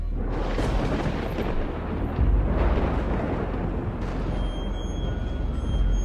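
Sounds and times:
thunder booming and rumbling: 0.1s - 6.0s.

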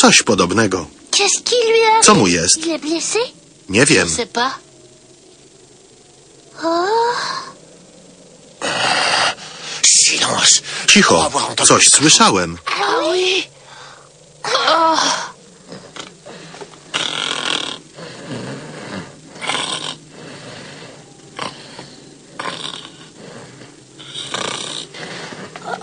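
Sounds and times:
speech: 0.0s - 4.6s, 6.6s - 7.5s, 10.1s - 13.6s, 14.4s - 15.3s
person snoring while asleep: 14.5s - 25.8s.

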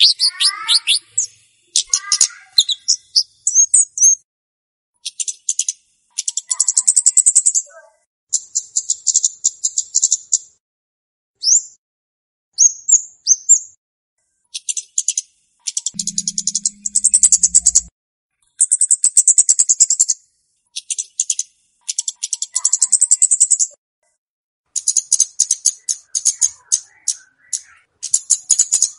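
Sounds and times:
flowerpecker song of high rapid ticks used as a lure: 0.0s - 4.2s, 5.0s - 7.7s, 8.3s - 10.6s, 12.6s - 23.8s, 24.7s - 28.9s
low hum: 16.0s - 17.9s.

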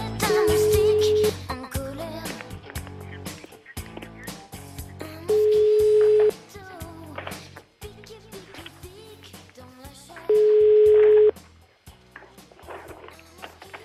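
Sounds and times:
telephone line tone beeps after a dropped call: 0.3s - 1.4s, 5.3s - 6.3s, 10.3s - 11.4s.

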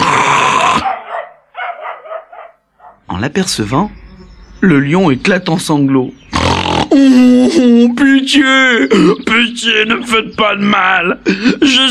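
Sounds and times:
small dog barking and snarling with bared teeth: 0.6s - 3.0s
speech: 3.1s - 4.0s, 4.6s - 11.8s.

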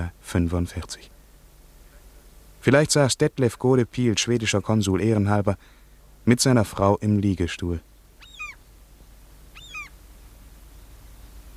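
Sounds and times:
speech: 0.0s - 1.2s, 2.6s - 7.9s
common seagulls crying: 8.2s - 8.6s, 9.5s - 10.0s.

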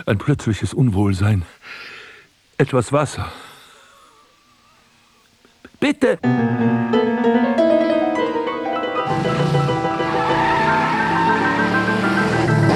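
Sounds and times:
speech: 0.0s - 2.0s, 2.6s - 3.4s, 5.8s - 7.8s
tonal musical passage: 6.2s - 12.7s
car speeding away: 9.0s - 12.7s
tire squeal: 9.1s - 12.7s.

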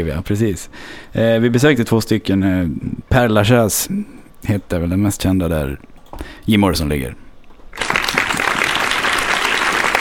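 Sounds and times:
speech: 0.0s - 7.2s
group applause: 7.8s - 10.0s.

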